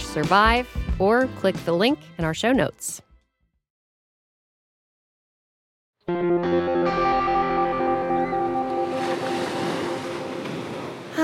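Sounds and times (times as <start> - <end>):
speech: 0.2 - 3.0
sustained tonal musical notes building into a held chord: 6.0 - 10.9
Pacific Ocean surf washing in: 8.6 - 11.2.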